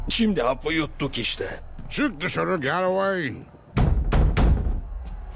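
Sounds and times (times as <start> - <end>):
speech: 0.2 - 3.6
heavy bangs on a door: 3.8 - 4.9.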